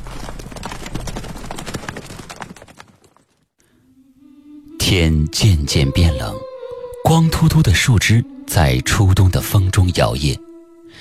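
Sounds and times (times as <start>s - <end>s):
many horses' hooves galloping as riders leave a manor: 0.0s - 3.4s
speech: 4.9s - 10.5s.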